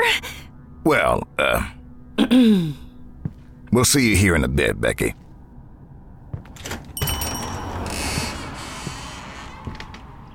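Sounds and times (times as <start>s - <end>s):
speech: 0.1s - 2.8s, 3.7s - 5.2s
door creaking open with groaning hinge: 6.4s - 10.3s.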